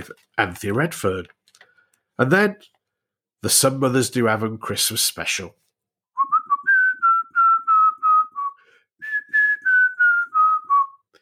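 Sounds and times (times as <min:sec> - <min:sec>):
speech: 0:00.0 - 0:01.4, 0:02.2 - 0:02.8, 0:03.4 - 0:05.6
cheerful whistled TV sitcom theme tune: 0:06.1 - 0:11.1.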